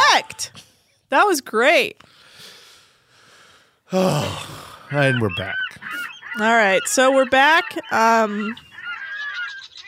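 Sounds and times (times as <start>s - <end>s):
speech: 0.2s - 2.2s, 3.9s - 5.7s, 6.4s - 8.7s
seagulls squawking: 4.7s - 9.8s.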